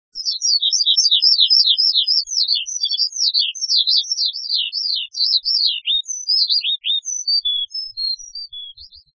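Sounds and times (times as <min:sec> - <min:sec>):
skylark: 0:00.0 - 0:09.1.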